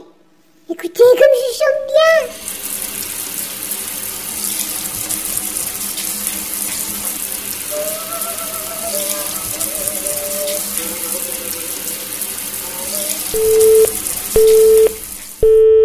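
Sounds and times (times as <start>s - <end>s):
shower running: 1.2s - 15.6s.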